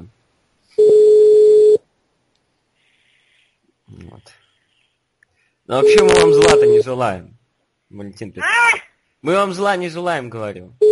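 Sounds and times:
telephone dialing tone calling the telephone exchange: 0:00.8 - 0:01.8
speech: 0:05.7 - 0:07.3, 0:07.9 - 0:10.8.

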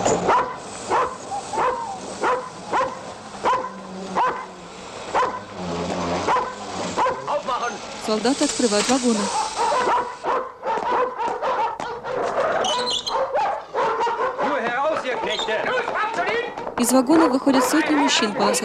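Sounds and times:
German shepherd dogs barking on a station platform: 0:00.1 - 0:07.5, 0:09.3 - 0:15.5, 0:17.4 - 0:18.6
speech: 0:08.1 - 0:09.5, 0:16.9 - 0:18.6.

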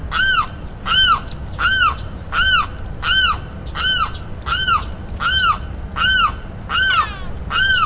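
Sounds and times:
limpkin Aramus guarauna strident call: 0:00.1 - 0:07.8.

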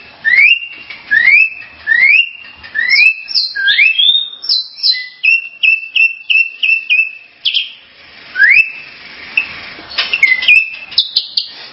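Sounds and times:
starling song with slurred whistles chirpy notes and rising whistle: 0:00.2 - 0:11.6.

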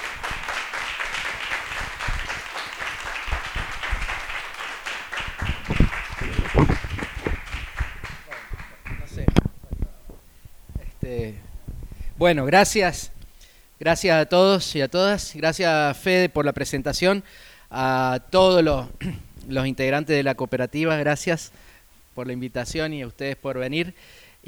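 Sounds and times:
audience applause at a talk: 0:00.0 - 0:09.2
speech: 0:12.2 - 0:13.1, 0:13.8 - 0:21.6, 0:22.2 - 0:24.4.

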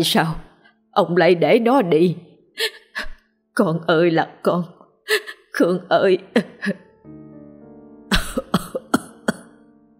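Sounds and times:
speech: 0:00.0 - 0:02.8, 0:03.6 - 0:07.2
old man coughing hard in a hacking fit: 0:08.1 - 0:09.5.

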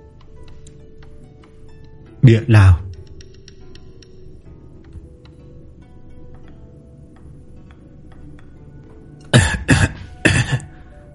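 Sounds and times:
speech: 0:02.2 - 0:02.8
light dry cough: 0:09.3 - 0:10.8.

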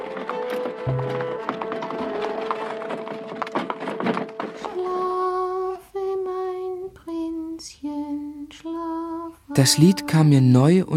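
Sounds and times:
horse-drawn carriage rattling rumble: 0:00.0 - 0:05.0
horse hooves of a horse-drawn carriage: 0:00.0 - 0:05.8
speech: 0:00.8 - 0:01.3, 0:09.6 - 0:10.9.

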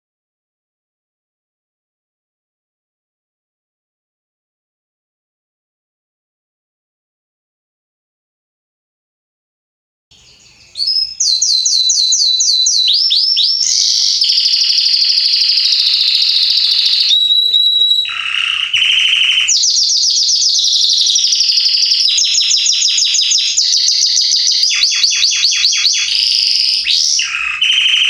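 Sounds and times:
male Belgian canary singing trills and slurred whistles: 0:10.1 - 0:28.0.

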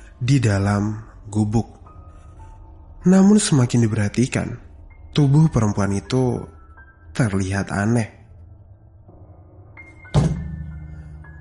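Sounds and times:
speech: 0:00.2 - 0:01.8, 0:03.0 - 0:04.6, 0:05.2 - 0:06.6, 0:07.2 - 0:08.2
hut door suddenly bursting open as if kicked in: 0:10.1 - 0:10.7.

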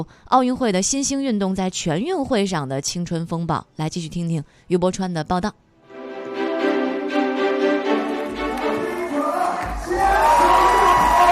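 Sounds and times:
speech: 0:00.0 - 0:05.6
upbeat music at a three-on-three basketball game: 0:05.9 - 0:11.2
crowd cheering at a U19 three-on-three basketball game in Xi'an: 0:07.9 - 0:11.2.

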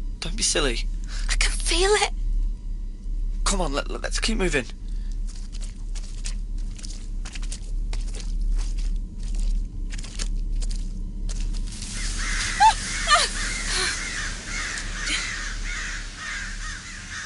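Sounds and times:
faint low rumble: 0:00.0 - 0:17.2
speech: 0:00.2 - 0:02.2, 0:03.5 - 0:04.8
crunching: 0:04.7 - 0:13.9
crows cawing outdoors: 0:12.0 - 0:17.2.

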